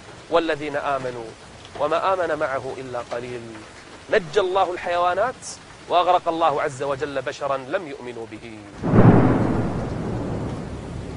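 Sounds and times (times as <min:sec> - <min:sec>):
steady loud roar of heavy rain: 0:00.0 - 0:11.1
speech: 0:00.3 - 0:08.9
deep rumble of thunder: 0:08.8 - 0:11.1.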